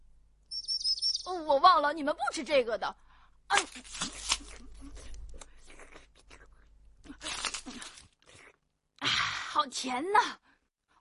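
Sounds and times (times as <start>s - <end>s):
small birds chirping: 0.5s - 1.7s
speech: 1.5s - 5.0s, 9.6s - 10.4s.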